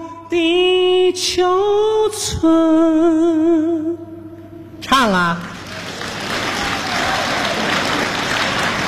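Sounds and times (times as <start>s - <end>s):
speech: 0.3s - 4.1s, 4.9s - 5.6s
live audience applause at a stage comedy show: 5.5s - 8.8s.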